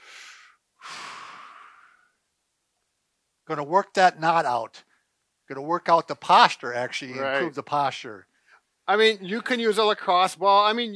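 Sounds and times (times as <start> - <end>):
deep breathing during a stretching exercise: 0.0 - 2.2
speech: 3.5 - 4.9, 5.5 - 8.3, 8.9 - 10.9.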